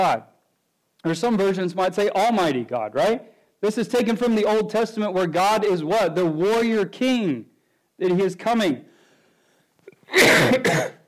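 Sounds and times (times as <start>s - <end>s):
speech: 0.0s - 0.3s, 1.0s - 8.9s, 10.1s - 11.0s
preacher coughing during a sermon: 9.8s - 11.0s.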